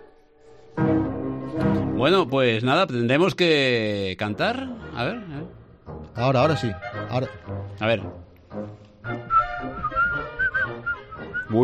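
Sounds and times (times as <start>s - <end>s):
speech: 1.6s - 5.6s, 6.2s - 9.2s
person whistling a short wavering tune: 9.2s - 11.6s.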